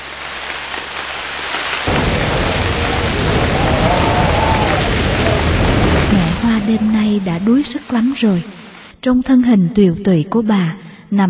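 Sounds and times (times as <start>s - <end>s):
steady rain on a bitterly cold night: 0.0s - 9.0s
howling north wind gusts with faint whistling: 1.9s - 8.9s
speech: 6.7s - 11.2s.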